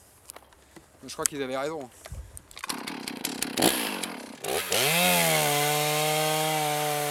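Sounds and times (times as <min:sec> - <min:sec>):
speech: 0:01.0 - 0:02.0, 0:04.7 - 0:05.2
chainsaw cutting and limbing a fir tree: 0:02.6 - 0:07.1.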